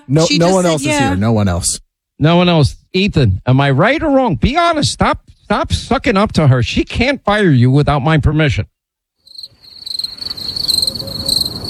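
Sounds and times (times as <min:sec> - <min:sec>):
speech: 0:00.1 - 0:08.8
crickets chirping in a shrill continuous trill: 0:09.2 - 0:11.6.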